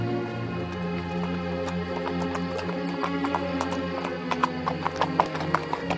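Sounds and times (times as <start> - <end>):
ridden horse's hooves clopping at walking pace in Haute-Provence: 0.1 - 5.9.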